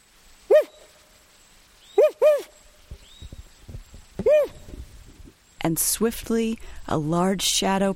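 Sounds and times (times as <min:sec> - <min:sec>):
man imitating an owl's territorial call in the Garcia River Forest: 0:00.5 - 0:00.9, 0:02.0 - 0:02.6, 0:04.2 - 0:04.8
speech: 0:04.2 - 0:04.6, 0:05.6 - 0:07.9.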